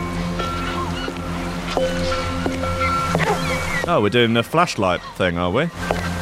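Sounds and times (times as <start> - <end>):
foghorn droning by the sea: 0.2 - 4.2
speech: 1.8 - 2.4, 3.9 - 6.0.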